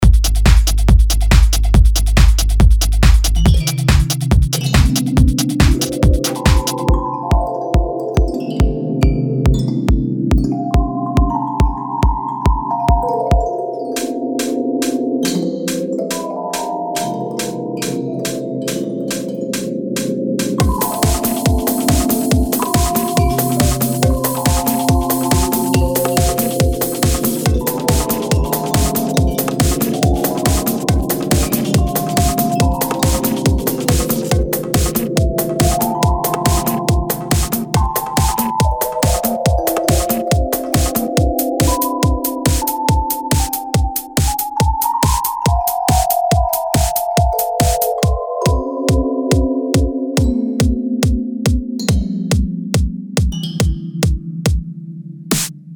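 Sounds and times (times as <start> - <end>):
psychedelic fantasy dance music soundscape: 0.0 - 54.7.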